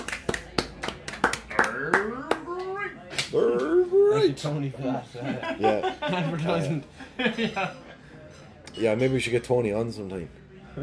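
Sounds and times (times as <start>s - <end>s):
congratulatory hand clapping: 0.0s - 3.7s
speech: 4.3s - 7.8s, 8.8s - 10.8s
laughter: 4.8s - 8.0s.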